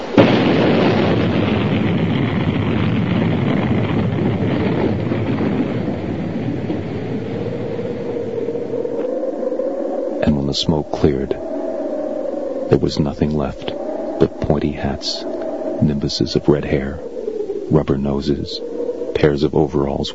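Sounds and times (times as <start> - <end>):
sudden loud explosion: 0.0 - 8.2
long heavy roaring rumble: 0.0 - 20.1
speech: 10.6 - 11.5, 12.7 - 17.1, 17.7 - 20.1.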